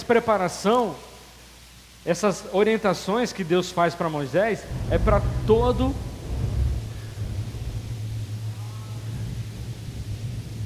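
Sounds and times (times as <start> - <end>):
faint hiss: 0.0 - 10.6
speech: 0.1 - 1.1, 2.0 - 6.1
deep thunder rumbling: 4.7 - 10.6.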